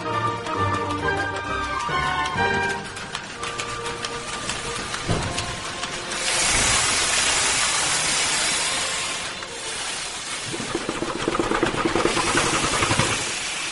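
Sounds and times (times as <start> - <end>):
1820s steam beam engine pounding and clanking: 0.2 - 13.7
escaping steam hissing from 1820s steam beam engine: 3.6 - 13.7.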